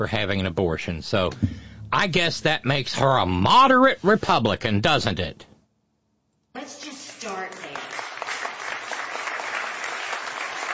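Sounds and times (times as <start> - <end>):
speech: 0.0 - 5.5
crowd clapping: 7.1 - 10.7.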